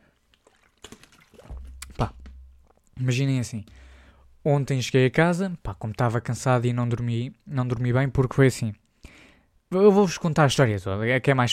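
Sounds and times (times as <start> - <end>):
person drinking water with sloshing and gulping: 0.0 - 3.0, 3.7 - 4.4
low bump of handling noise: 1.4 - 2.8
speech: 2.0 - 2.2, 3.0 - 8.8, 9.7 - 11.5.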